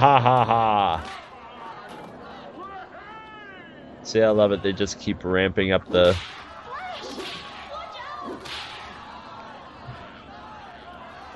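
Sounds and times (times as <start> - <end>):
speech: 0.0 - 1.2, 4.1 - 6.4
laughter: 0.0 - 2.9, 8.7 - 11.3
noisy crowd chattering and shouting: 0.0 - 11.3
whip cracking: 6.0 - 9.0.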